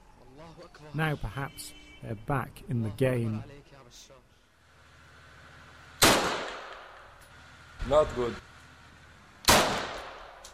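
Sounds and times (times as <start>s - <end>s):
speech: 0.4s - 4.3s, 7.8s - 8.5s
sniper rifle gunshot while being test-fired: 6.0s - 7.1s, 9.4s - 10.4s.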